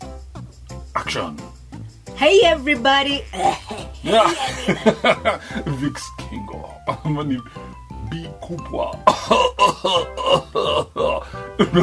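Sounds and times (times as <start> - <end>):
speech: 1.0 - 1.5, 2.2 - 11.8
harsh repeated coughing: 3.2 - 5.6, 9.0 - 11.8
laughter: 3.2 - 5.9, 11.6 - 11.8.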